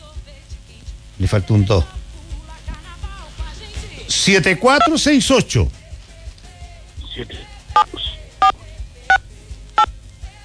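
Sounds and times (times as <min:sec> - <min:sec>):
speech: 0:01.2 - 0:02.0, 0:04.1 - 0:05.8, 0:07.2 - 0:08.0
faint murmur: 0:06.7 - 0:08.8
telephone keypad dialing tones: 0:07.0 - 0:08.6.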